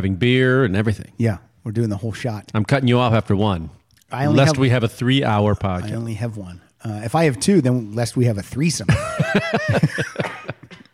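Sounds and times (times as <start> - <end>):
speech: 0.0 - 10.6
laughter: 8.9 - 10.9
person coughing in rough bursts: 9.9 - 10.9.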